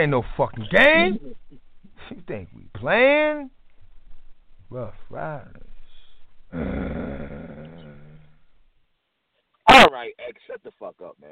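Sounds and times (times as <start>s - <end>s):
speech: 0.0s - 3.6s, 4.7s - 5.7s, 6.5s - 7.4s, 9.8s - 11.3s
man growling like a dog: 6.5s - 8.5s.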